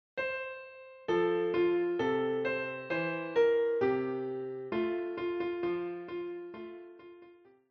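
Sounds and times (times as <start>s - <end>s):
folk song played on piano: 0.2s - 7.6s.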